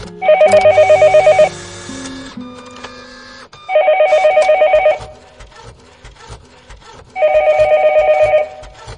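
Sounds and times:
telephone ringing with rapid electronic trilling: 0.2s - 5.1s, 7.2s - 8.8s.

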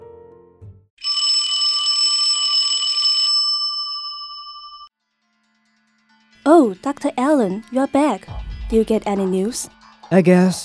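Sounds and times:
doorbell ringing: 1.0s - 4.9s
speech: 6.6s - 10.6s.

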